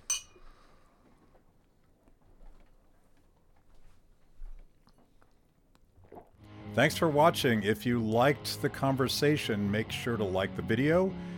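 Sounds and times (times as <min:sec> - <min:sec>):
glasses of absinthe clinking in a toast: 0:00.0 - 0:00.6
speech: 0:06.8 - 0:11.3.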